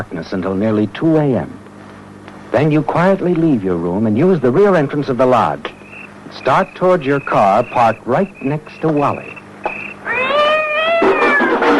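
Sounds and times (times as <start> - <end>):
speech: 0.0 - 1.6, 2.5 - 9.4
cat meowing: 10.0 - 11.7.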